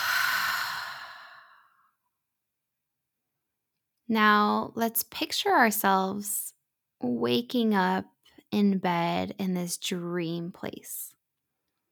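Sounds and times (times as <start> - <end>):
long breathy exhale out through the mouth: 0.0 - 1.9
speech: 4.1 - 11.1.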